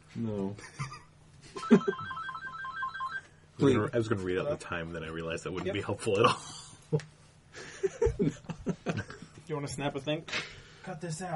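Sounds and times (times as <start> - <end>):
speech: 0.2 - 1.0, 1.6 - 2.0, 3.6 - 7.1, 7.8 - 8.8, 9.5 - 11.3
phone electronic ringtone trilling: 1.6 - 3.4
laughter: 7.6 - 9.4.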